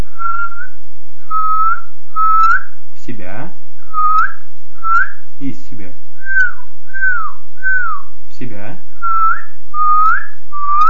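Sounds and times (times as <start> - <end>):
inward whistling through pursed lips: 0.0 - 2.7, 3.9 - 5.2, 6.2 - 8.1, 9.0 - 10.8
speech: 1.8 - 10.8.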